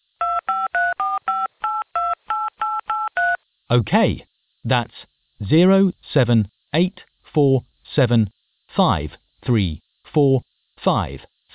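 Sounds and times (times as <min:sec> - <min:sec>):
telephone keypad tones entering a phone number: 0:00.2 - 0:03.4
speech: 0:03.7 - 0:11.5.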